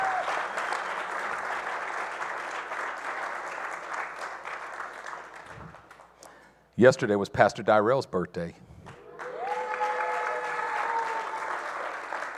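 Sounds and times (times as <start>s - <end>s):
audience applauding: 0.0s - 6.2s, 8.9s - 12.3s
speech: 6.8s - 8.7s.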